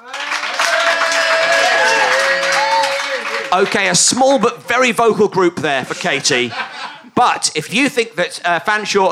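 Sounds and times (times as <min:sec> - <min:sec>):
crowd whooping and cheering: 0:00.0 - 0:03.8
live audience applauding: 0:00.0 - 0:04.5
speech: 0:03.5 - 0:09.1
laughter: 0:05.7 - 0:07.2.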